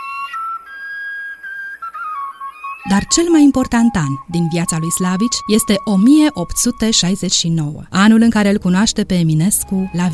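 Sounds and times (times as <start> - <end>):
Romanian shepherd's flute fluier playing a melody: 0.0 - 7.7, 9.5 - 10.1
speech: 2.8 - 10.1.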